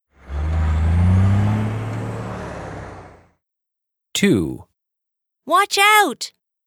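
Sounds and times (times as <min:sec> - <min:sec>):
heavy truck engine rumbling and droning: 0:00.1 - 0:03.3
speech: 0:04.2 - 0:04.7, 0:05.5 - 0:06.4.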